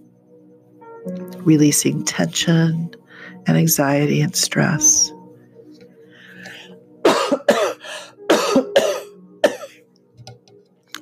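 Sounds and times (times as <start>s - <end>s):
speech: 1.0s - 5.2s
person clearing throat: 7.1s - 9.8s.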